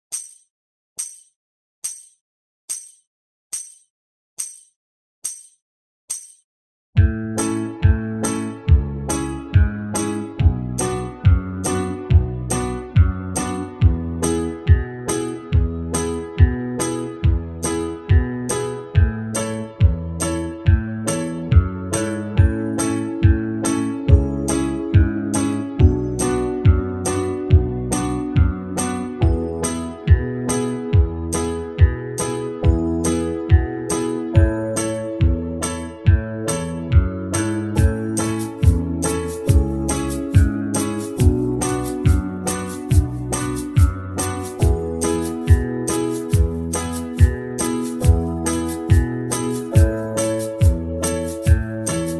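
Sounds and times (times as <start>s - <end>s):
banjo backing track: 7.1s - 52.1s.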